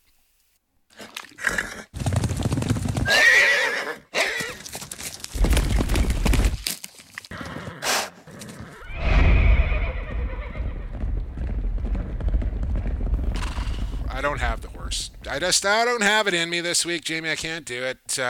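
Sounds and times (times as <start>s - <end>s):
horse hooves clip-clopping: 2.0s - 3.3s, 4.2s - 8.8s, 9.8s - 15.9s
horse whinnying loudly: 3.0s - 4.6s, 7.3s - 11.0s
horse snorting: 7.3s - 10.8s, 12.9s - 14.7s
speech: 14.4s - 18.2s.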